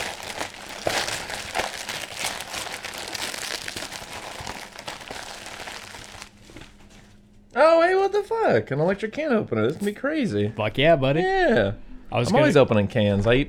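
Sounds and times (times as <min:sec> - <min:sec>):
wrapping paper ripping and crinkling as a gift is torn open: 0:00.0 - 0:07.2
speech: 0:07.6 - 0:13.4.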